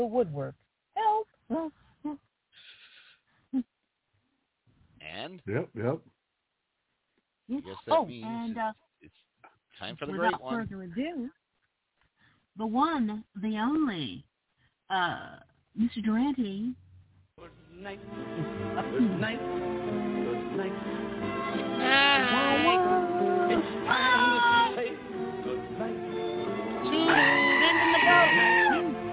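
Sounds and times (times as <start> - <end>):
speech: 0.0 - 0.6, 1.5 - 2.3, 3.5 - 3.7, 5.2 - 6.2, 7.5 - 9.2, 9.8 - 11.4, 12.6 - 14.3, 14.9 - 16.8, 17.4 - 19.9, 20.6 - 21.0, 21.8 - 23.0
murmuring voices: 9.9 - 10.7, 18.3 - 29.0
goat bleating: 26.9 - 28.8.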